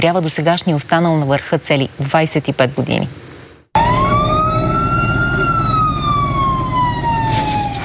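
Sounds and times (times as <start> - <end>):
speech: 0.0 - 3.3
fire truck siren wailing at the airport in Gorna Oryahovitsa Bulgaria: 3.8 - 7.8
heavy rumbling fire truck engine drone: 3.8 - 7.8.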